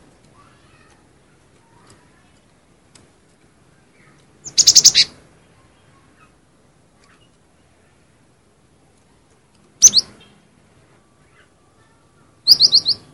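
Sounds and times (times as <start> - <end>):
cinereous tit calling: 4.4 - 5.2, 12.5 - 13.1.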